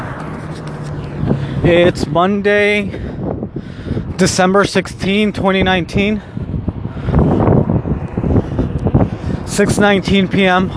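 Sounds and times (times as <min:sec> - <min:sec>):
strong wind buffeting the microphone outdoors on a cold December evening: 0:00.0 - 0:10.7
speech: 0:01.6 - 0:03.0, 0:04.2 - 0:06.3, 0:09.6 - 0:10.7.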